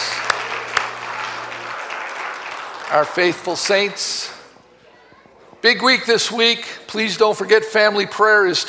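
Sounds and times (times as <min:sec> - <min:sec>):
audience applause in a reverberant hall: 0:00.0 - 0:04.6
speech: 0:02.9 - 0:04.4, 0:05.6 - 0:08.6.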